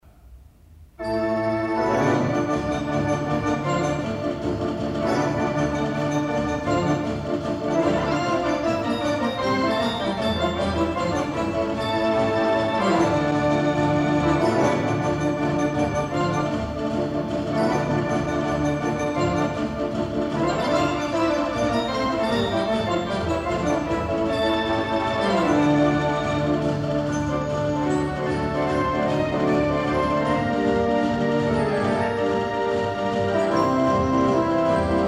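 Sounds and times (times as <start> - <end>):
Wurlitzer cinema organ in Bedford: 1.0 - 35.0.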